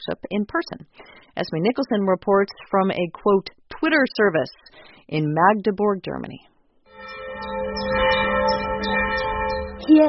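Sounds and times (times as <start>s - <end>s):
speech: 0.0s - 7.5s, 9.9s - 10.0s
single church bell pealing in Magdeburg Germany calling to evening prayers: 6.9s - 10.0s.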